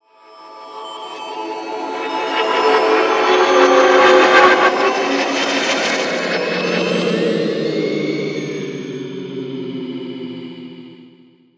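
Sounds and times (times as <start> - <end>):
science fiction sweeper swell: 0.7 - 9.8.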